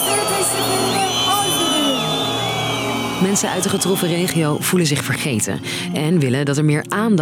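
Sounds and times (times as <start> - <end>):
large angry crowd jeering at a minister at a commemoration: 0.0 - 4.8
speech: 3.2 - 7.2.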